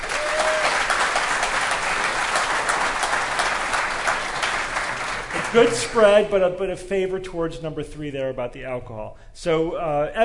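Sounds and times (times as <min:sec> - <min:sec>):
applause from a sizable audience: 0:00.0 - 0:06.2
speech: 0:05.5 - 0:10.2.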